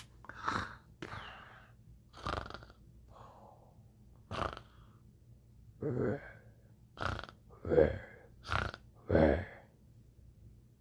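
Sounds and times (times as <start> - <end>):
voice imitating a sleeping Tyrannosaurus snoring: 0.3 - 2.8, 4.3 - 4.8, 5.8 - 9.6.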